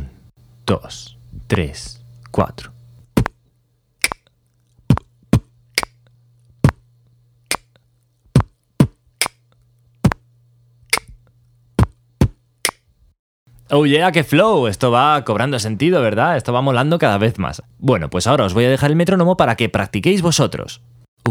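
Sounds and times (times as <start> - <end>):
faint low hum: 0.0 - 21.2
speech: 0.7 - 2.7, 13.7 - 21.2
beatboxed kick and snare drum pattern: 3.2 - 3.4, 4.9 - 6.0, 6.6 - 6.9, 8.4 - 9.4, 10.0 - 10.2, 10.9 - 11.2, 11.8 - 12.8.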